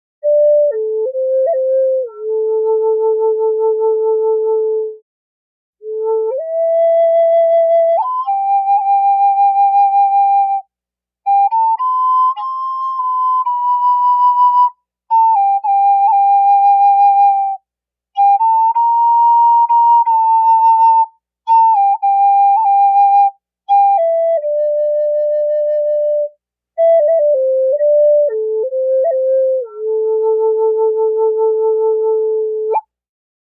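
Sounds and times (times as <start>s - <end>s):
medium Eastern Cedar flute in A: 0.2s - 5.0s, 5.8s - 33.0s.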